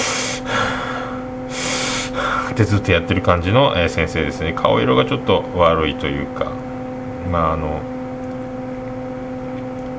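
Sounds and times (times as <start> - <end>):
voice imitating a teacher's heavy labored breathing: 0.0 - 2.5
speech: 2.6 - 6.6, 7.3 - 7.9.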